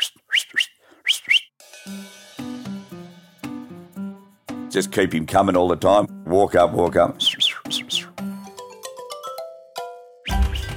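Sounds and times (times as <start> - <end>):
shepherd's run whistle for directing herding dogs: 0.0 - 1.5, 7.2 - 8.1, 10.3 - 10.7
speech: 1.9 - 2.2, 4.7 - 7.4.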